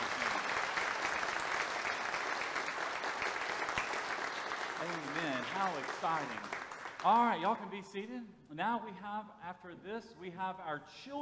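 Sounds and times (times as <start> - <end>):
audience applauding in a large room: 0.0 - 7.5
speech: 5.5 - 11.1.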